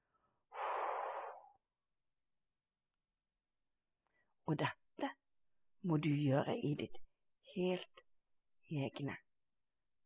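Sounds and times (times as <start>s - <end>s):
faint soft breath: 0.0s - 1.6s
slow breathy exhale: 0.5s - 1.6s
speech: 4.5s - 5.2s, 5.8s - 8.0s, 8.7s - 9.2s.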